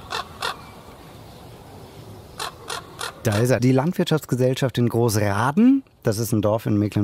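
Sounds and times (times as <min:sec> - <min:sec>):
common raven croaking: 0:00.0 - 0:01.0, 0:02.3 - 0:03.6
faint hiss: 0:00.0 - 0:07.0
speech: 0:03.2 - 0:07.0.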